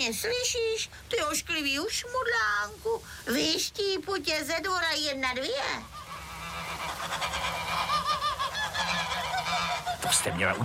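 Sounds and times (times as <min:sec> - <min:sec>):
speech: 0:00.0 - 0:06.0, 0:10.0 - 0:10.6
goose honking in a farmyard: 0:05.3 - 0:10.6.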